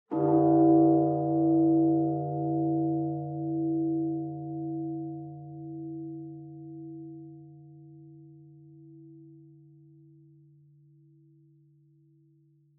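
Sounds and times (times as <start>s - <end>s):
distant high bonsho temple bell: 0.1s - 10.1s.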